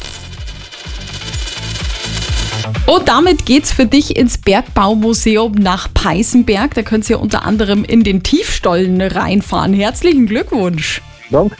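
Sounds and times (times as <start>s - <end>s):
coin rattling and wobbling on a hard surface: 0.0s - 2.8s
speech: 2.9s - 11.5s.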